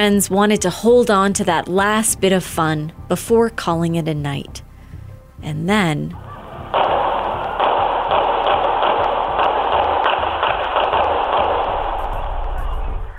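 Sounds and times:
speech: 0.0s - 4.6s, 5.4s - 6.3s
gunfire outside a bar at closing time: 6.7s - 13.1s.

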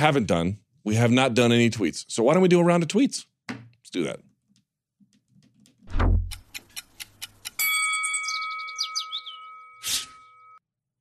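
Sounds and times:
speech: 0.0s - 3.3s, 3.9s - 4.3s
low thud: 5.9s - 6.4s
clock-like ticks: 6.2s - 7.6s.

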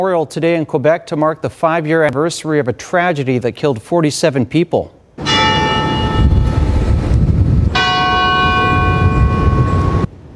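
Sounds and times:
speech: 0.0s - 5.0s
church bells ringing in memorial: 5.2s - 7.1s, 7.7s - 10.1s
low rumble of outdoor ambience: 5.3s - 10.3s.

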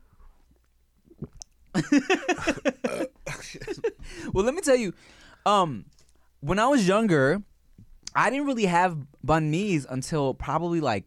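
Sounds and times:
voice imitating a girl's loud gulping while drinking: 1.0s - 1.5s
quiet mouth clicks: 1.1s - 1.6s
speech: 1.8s - 2.7s, 4.4s - 7.5s, 8.2s - 11.0s.

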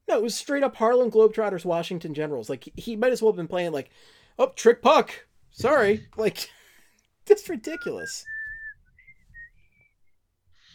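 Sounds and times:
speech: 0.2s - 6.6s, 7.3s - 8.3s
person whistling a short melodic tune: 7.7s - 10.2s.

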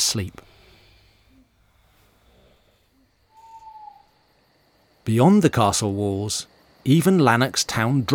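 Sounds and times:
speech: 0.1s - 0.5s, 5.0s - 8.1s
owl screeching: 2.9s - 4.4s.

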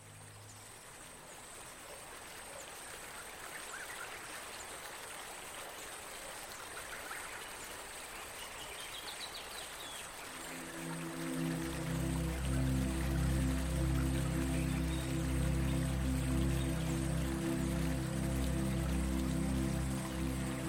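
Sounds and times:
flowing dripping water in the Amazon rainforest: 0.0s - 20.6s
low even drone of Amazon rainforest ambience: 10.3s - 20.6s.

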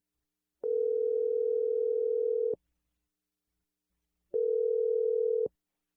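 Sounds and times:
telephone dial tone: 0.7s - 2.6s, 4.3s - 5.5s.

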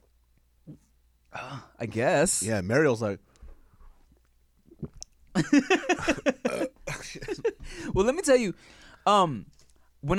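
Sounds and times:
voice imitating a girl gulping loudly while drinking: 0.6s - 0.9s, 4.6s - 5.2s
speech: 1.4s - 3.3s, 5.4s - 10.1s.

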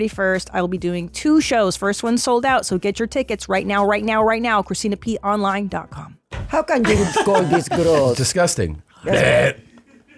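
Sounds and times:
speech: 0.0s - 9.6s
laughter: 6.8s - 8.3s, 9.1s - 10.1s
loud raspy burp: 9.0s - 9.6s.

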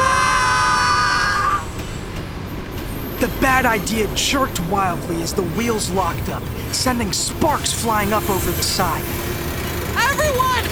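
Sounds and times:
people screaming: 0.0s - 1.7s
dull rumbling background: 0.0s - 10.7s
speech: 3.2s - 9.4s.

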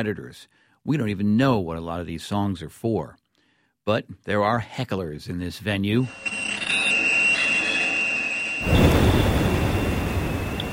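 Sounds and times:
speech: 0.0s - 3.2s, 3.8s - 6.9s
high mechanical whine underwater from drilling rigs and boats: 5.6s - 10.7s.

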